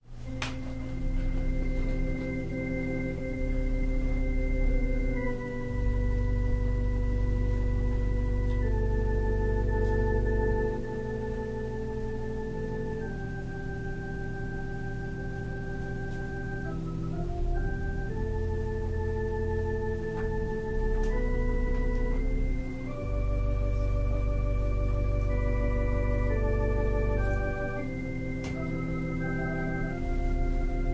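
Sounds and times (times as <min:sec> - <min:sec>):
organ playing a prelude: 0:00.1 - 0:30.9.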